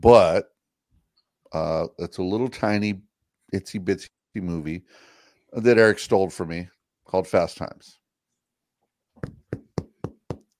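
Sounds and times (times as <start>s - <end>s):
speech: 0.0s - 0.5s, 1.5s - 8.0s
dull hollow knocks on a skull: 9.2s - 10.4s.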